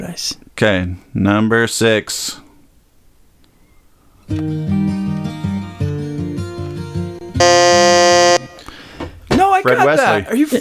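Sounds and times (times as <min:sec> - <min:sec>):
speech: 0:00.0 - 0:02.4, 0:04.3 - 0:05.0, 0:09.6 - 0:10.5
stepping musical tones: 0:04.3 - 0:08.6
loud harsh game-show buzzer: 0:07.4 - 0:08.4.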